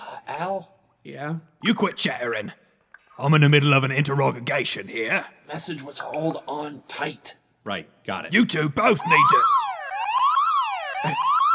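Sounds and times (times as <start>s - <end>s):
speech: 0.5s - 2.6s, 3.2s - 9.6s, 11.0s - 11.3s
door alarm with sweeping electronic tone: 8.3s - 11.5s.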